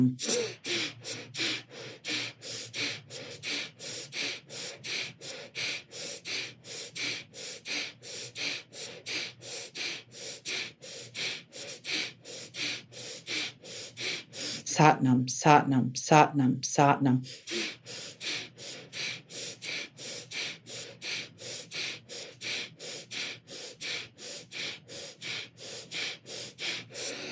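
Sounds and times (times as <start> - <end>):
speech: 0.0 - 1.2, 14.8 - 17.4
rapid forceful rhythmic breathing during a breathing exercise: 0.0 - 27.3.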